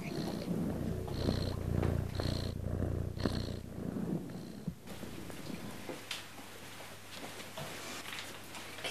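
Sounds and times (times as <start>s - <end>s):
cat purring: 0.0s - 6.7s
rustling: 0.0s - 8.0s.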